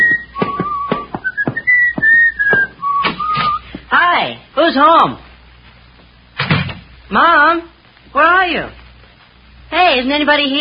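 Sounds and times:
person whistling a bright lilting tune: 0:00.0 - 0:03.6
sharp footstep-like thumps: 0:00.0 - 0:03.9
speech: 0:04.7 - 0:05.3, 0:07.1 - 0:08.8, 0:09.7 - 0:10.5.

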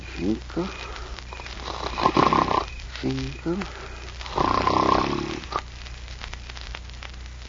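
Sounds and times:
speech: 0:00.2 - 0:00.9, 0:03.0 - 0:04.5
faint snort: 0:01.6 - 0:02.7, 0:04.3 - 0:05.6
man snoring while asleep: 0:01.6 - 0:05.6.

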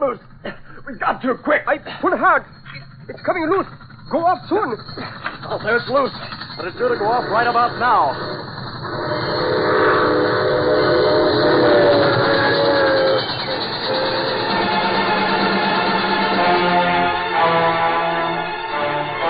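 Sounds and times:
speech: 0:00.0 - 0:09.1
troop train rumbling past: 0:00.0 - 0:19.2
troop train whistle blaring: 0:06.6 - 0:19.2.

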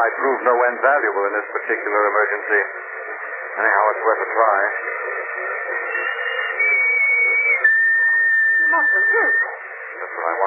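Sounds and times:
speech: 0:00.0 - 0:05.5, 0:08.7 - 0:10.4
long steady whistle: 0:05.4 - 0:09.7.

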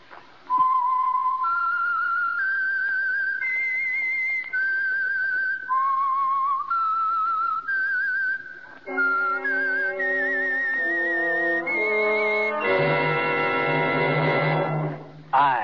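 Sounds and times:
solo whistled radio program signature melody: 0:00.5 - 0:15.2
loud brassy orchestral swell: 0:08.9 - 0:15.2.

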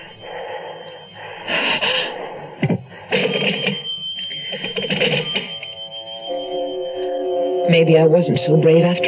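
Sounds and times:
old-style telephone bell ringing: 0:03.1 - 0:09.0
speech: 0:07.7 - 0:09.0.

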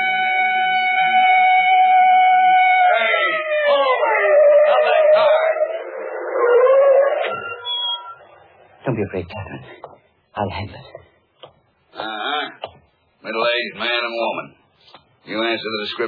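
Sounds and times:
police car siren from behind a car: 0:00.0 - 0:08.2
speech: 0:09.0 - 0:11.0, 0:13.3 - 0:14.5, 0:15.3 - 0:16.0.

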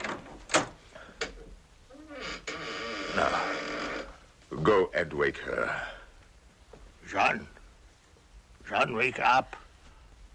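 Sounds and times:
old door creaking as it swings: 0:00.0 - 0:04.3
speech: 0:04.6 - 0:06.0, 0:07.1 - 0:07.6, 0:08.7 - 0:09.6.

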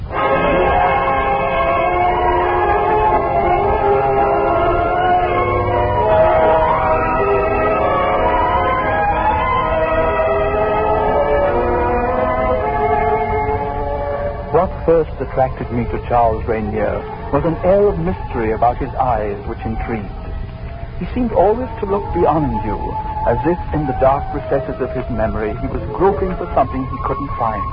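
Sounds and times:
train rumbling along rails: 0:00.0 - 0:27.7
speech: 0:14.9 - 0:20.2, 0:21.0 - 0:27.7.

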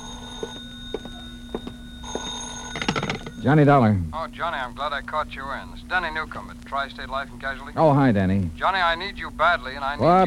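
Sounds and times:
telephone bell ringing: 0:00.0 - 0:03.9
speech: 0:03.4 - 0:10.2.

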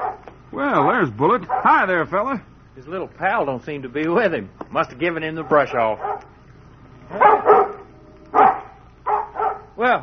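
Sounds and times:
dog barking: 0:00.0 - 0:00.3, 0:01.5 - 0:01.8, 0:05.4 - 0:06.4, 0:07.1 - 0:09.8
speech: 0:00.6 - 0:06.2, 0:07.1 - 0:07.5, 0:09.8 - 0:10.0.

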